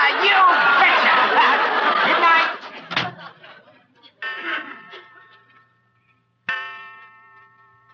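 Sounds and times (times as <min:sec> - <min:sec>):
laughter: 0:00.0 - 0:05.9
clock striking twelve: 0:04.2 - 0:07.9.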